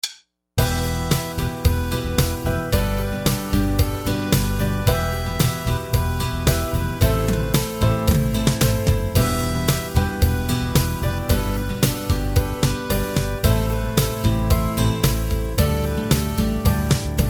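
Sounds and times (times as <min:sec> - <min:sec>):
harmonica playing: 0:00.6 - 0:17.2.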